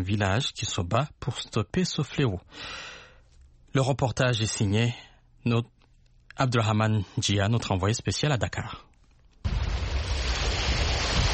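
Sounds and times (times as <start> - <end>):
speech: 0.0 - 3.0, 3.7 - 5.8, 6.4 - 8.9
sea waves breaking on the shore near Dakar's port: 9.6 - 11.3.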